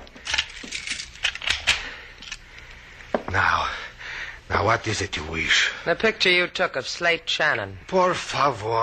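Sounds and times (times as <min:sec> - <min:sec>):
metallic jangling of keys: 0:00.2 - 0:02.4
speech: 0:04.6 - 0:08.8.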